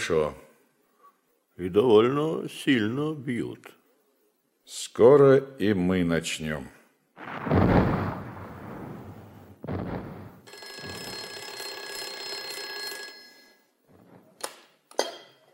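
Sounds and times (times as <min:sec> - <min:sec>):
speech: 0:00.1 - 0:00.4, 0:01.6 - 0:03.8, 0:04.7 - 0:07.9
deep rumbling thuds: 0:07.2 - 0:10.5
old telephone bell ringing: 0:10.5 - 0:13.8.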